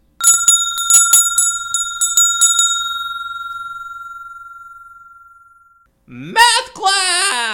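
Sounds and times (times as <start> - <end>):
bright bell ringing: 0.2 - 5.8
speech: 6.1 - 7.0.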